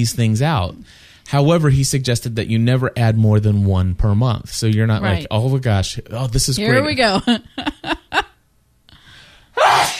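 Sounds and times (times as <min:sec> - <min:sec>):
speech: 0:00.0 - 0:07.7
breathy inhale: 0:00.8 - 0:01.3, 0:08.9 - 0:09.6
loud human sneeze: 0:09.6 - 0:09.9.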